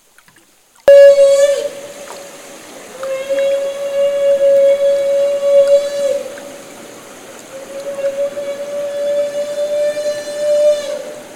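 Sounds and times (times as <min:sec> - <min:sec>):
humpback whale feeding call during bubble-net feeding: 0:00.9 - 0:11.3.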